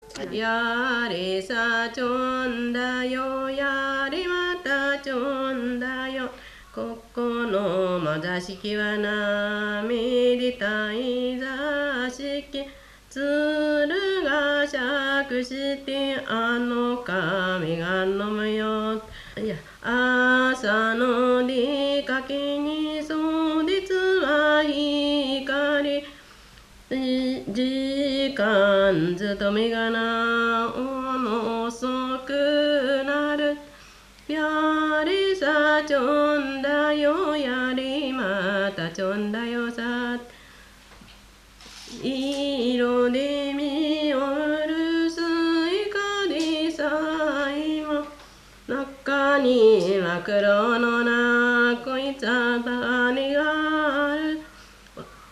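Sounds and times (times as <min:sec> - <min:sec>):
Japanese minyou folk song: 0:00.0 - 0:55.1.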